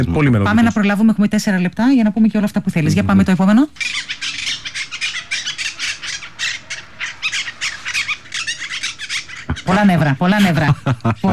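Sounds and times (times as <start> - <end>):
monk parakeets squawking in harsh calls in Athens: 0.0 - 1.8, 2.5 - 11.3
speech: 0.0 - 4.2, 9.7 - 11.3
laughter: 9.5 - 11.3.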